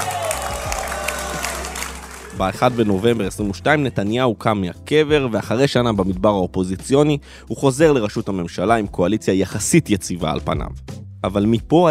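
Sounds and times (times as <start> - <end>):
large crowd applauding after a political speech: 0.0 - 3.4
speech: 2.4 - 11.8.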